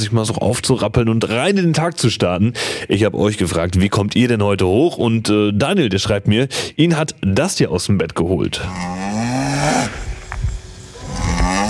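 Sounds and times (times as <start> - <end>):
speech: 0.0 - 10.0
low noise: 0.0 - 11.6
cow mooing: 8.6 - 10.1, 11.0 - 11.6.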